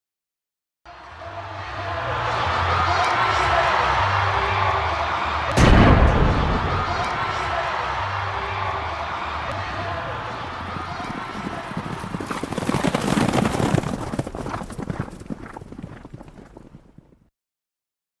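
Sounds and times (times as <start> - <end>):
faint crowd noise: 0.9 - 14.3
horses galloping at a relay race: 10.6 - 17.2.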